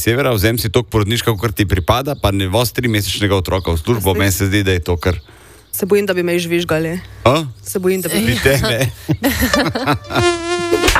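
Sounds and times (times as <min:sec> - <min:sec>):
speech: 0:00.0 - 0:10.4
laughter: 0:08.3 - 0:10.8
mosquito buzzing whine as effect in a mosquito-repellent advert: 0:10.0 - 0:10.9.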